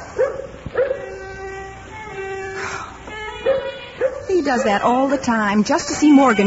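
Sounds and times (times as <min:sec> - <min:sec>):
dog yipping and barking: 0:00.2 - 0:01.2, 0:03.4 - 0:04.8
speech: 0:04.4 - 0:06.4.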